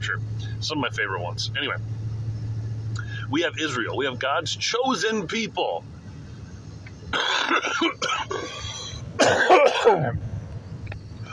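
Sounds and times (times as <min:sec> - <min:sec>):
speech: 0:00.1 - 0:02.0, 0:03.3 - 0:05.9, 0:07.1 - 0:10.3
harsh coughing and throat clearing: 0:07.1 - 0:10.2.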